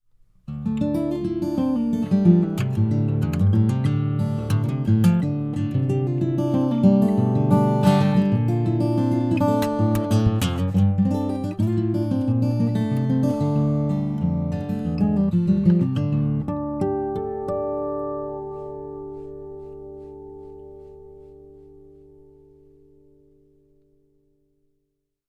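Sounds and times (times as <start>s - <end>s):
acoustic guitar: 0.1s - 24.2s.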